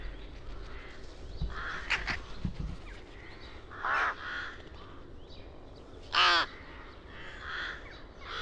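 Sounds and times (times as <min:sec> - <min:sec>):
rooks cawing raspily: 0:00.0 - 0:02.3, 0:03.1 - 0:05.1, 0:06.1 - 0:08.4.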